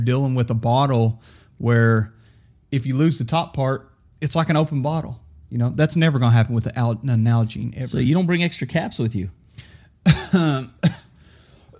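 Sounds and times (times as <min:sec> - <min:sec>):
speech: 0:00.0 - 0:11.0
loud cough with raspy throat-clearing tail: 0:10.1 - 0:11.2.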